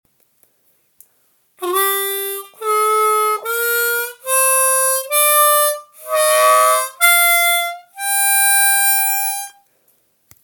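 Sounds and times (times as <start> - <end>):
harmonica playing Bayati maqam with overblows: 1.6 - 9.6.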